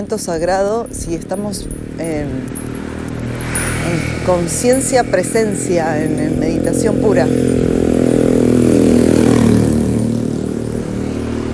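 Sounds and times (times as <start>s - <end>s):
speech: 0.0s - 2.8s, 3.4s - 7.7s
motorcycle engine roaring: 0.0s - 11.5s.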